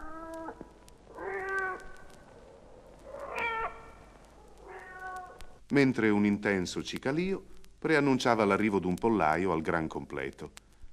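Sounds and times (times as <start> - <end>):
cat meowing in drawn-out rising-and-falling calls: 0.0 - 0.6, 1.2 - 2.0, 3.2 - 4.0, 4.6 - 5.5
speech: 5.7 - 10.6.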